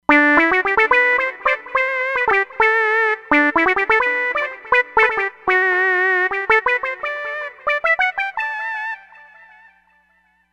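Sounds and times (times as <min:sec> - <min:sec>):
synth lead: 0:00.1 - 0:09.2.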